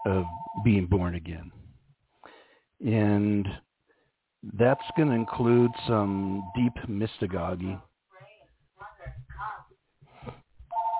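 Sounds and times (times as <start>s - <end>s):
telephone ringing at a relative's house: 0.0s - 0.7s, 4.7s - 6.8s, 10.7s - 10.9s
speech: 0.0s - 1.6s, 2.8s - 3.6s, 4.4s - 7.9s.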